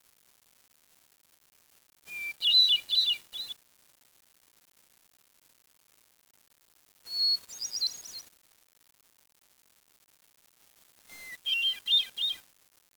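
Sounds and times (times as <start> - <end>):
bird giving high twittering calls: 2.1 - 3.5, 7.1 - 8.2, 11.2 - 12.4.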